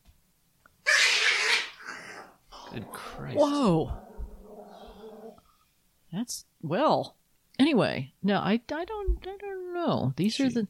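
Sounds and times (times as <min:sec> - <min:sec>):
pet growling protectively over its vomit: 0:01.3 - 0:05.5
speech: 0:02.8 - 0:04.0, 0:06.1 - 0:10.6.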